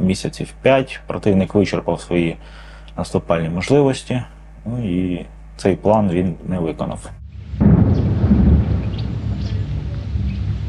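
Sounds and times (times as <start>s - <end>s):
speech: 0.1s - 7.7s
own artillery firing: 7.2s - 10.6s
wind noise: 7.2s - 10.6s.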